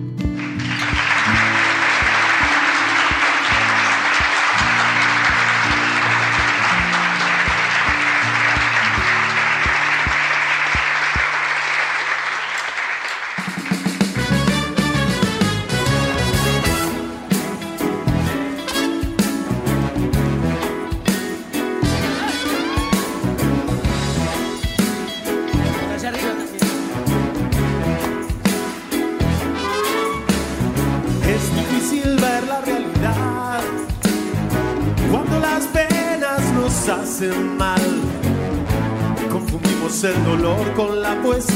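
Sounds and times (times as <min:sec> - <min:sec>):
music: 0:00.0 - 0:41.5
large crowd clapping: 0:00.2 - 0:32.3.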